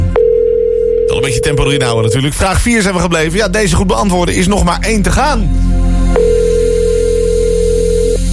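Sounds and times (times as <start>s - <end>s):
telephone ringing on a call line: 0.2s - 2.3s, 6.2s - 8.2s
speech: 1.3s - 6.3s.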